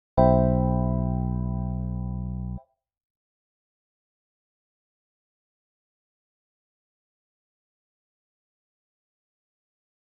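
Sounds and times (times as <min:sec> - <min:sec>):
C major seventh chord with B bass: 0:00.2 - 0:02.6.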